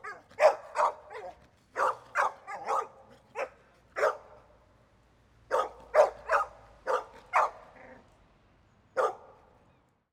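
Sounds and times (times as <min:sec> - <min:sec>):
medium-size dog barking: 0:00.0 - 0:04.4, 0:05.5 - 0:07.7, 0:09.0 - 0:09.4.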